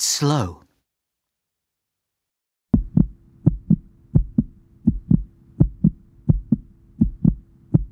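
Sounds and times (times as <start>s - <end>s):
speech: 0.0s - 0.6s
fast heartbeat with low double thuds: 2.7s - 7.9s.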